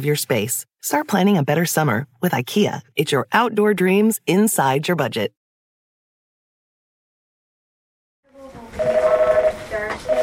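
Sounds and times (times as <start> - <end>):
speech: 0.0 - 5.4
electronic telephone buzzing ring tone: 8.8 - 10.2.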